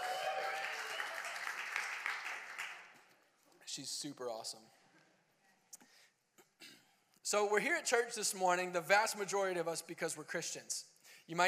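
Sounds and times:
crowd applauding: 0.0 - 3.2
speech: 3.8 - 4.8, 7.3 - 11.4.

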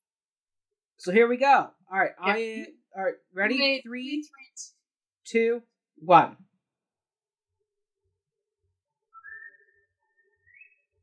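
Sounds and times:
speech: 1.0 - 6.5
whistled melody in a film soundtrack: 9.0 - 11.0.

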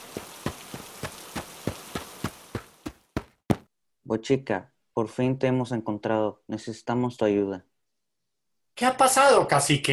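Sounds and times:
heavy rain hissing: 0.0 - 2.9
speech: 4.1 - 7.7, 8.8 - 9.9.

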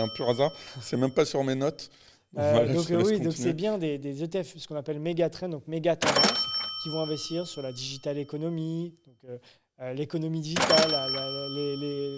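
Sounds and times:
speech: 0.0 - 12.1
cash register ringing with a bright metallic chime: 6.0 - 7.8, 10.5 - 12.1.

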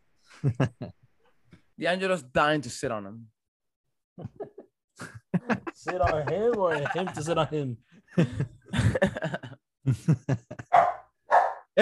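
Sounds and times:
speech: 0.4 - 1.0, 1.8 - 3.4, 4.2 - 10.6
laughter: 4.2 - 10.8
dog barking and yipping: 10.7 - 11.7.

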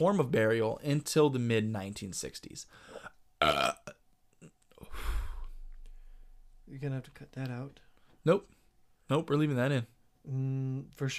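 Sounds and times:
speech: 0.0 - 5.1, 6.7 - 11.1
loud burp: 3.4 - 4.0.

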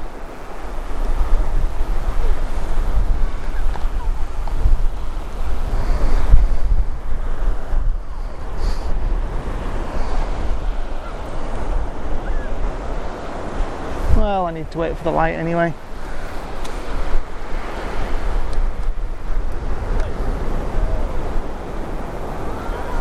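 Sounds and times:
gusty wind buffeting the microphone: 0.0 - 22.9
waves washing onto the shore of Talisker Bay in Scotland: 0.0 - 22.9
speech: 14.7 - 15.8.

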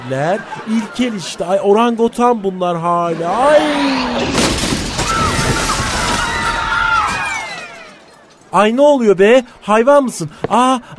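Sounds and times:
laughter: 0.0 - 4.2
speech: 0.1 - 4.7, 8.5 - 10.9
glass window shattering: 4.2 - 8.3.

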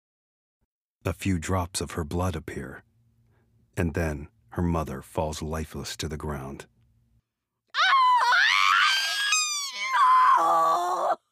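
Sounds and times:
speech: 1.0 - 2.9, 3.8 - 6.7
unearthly scream of a departing being: 7.7 - 11.3.

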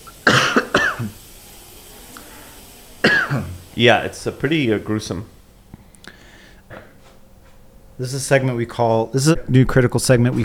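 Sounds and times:
person coughing: 0.2 - 1.2, 3.0 - 3.6
speech: 3.3 - 5.4, 8.0 - 10.4.

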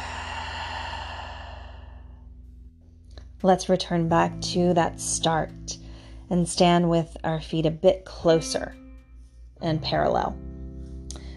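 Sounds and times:
slow breath out through the mouth during a standing yoga stretch: 0.0 - 2.3
steady droning background: 0.0 - 11.3
speech: 3.4 - 8.8, 9.6 - 10.4.

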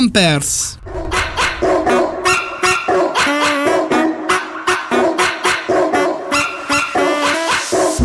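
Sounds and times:
speech: 0.0 - 2.0
big dog barking in deep woofs: 0.8 - 7.1.

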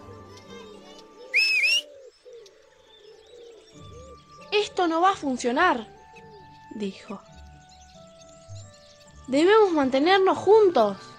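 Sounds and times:
murmuring, cooing bird-like sounds: 0.0 - 7.2
whistle blast: 1.3 - 1.9
speech: 4.7 - 6.0, 6.8 - 7.3, 9.3 - 11.1.

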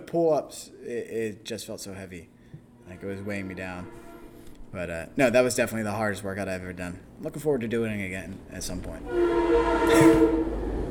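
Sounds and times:
speech: 0.1 - 4.0, 4.7 - 10.6
train horn blast: 2.8 - 4.6, 9.1 - 10.8
train rumbling past: 2.9 - 5.7, 8.6 - 10.8.

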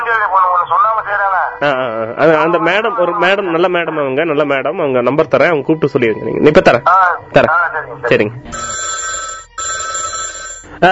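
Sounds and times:
speech: 0.1 - 8.8
telephone ringing in electronic bursts: 8.5 - 10.9.

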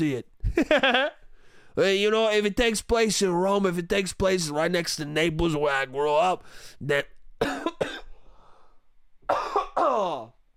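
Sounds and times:
speech: 0.0 - 1.2, 1.8 - 7.9
person coughing: 7.4 - 8.1, 9.3 - 10.3.

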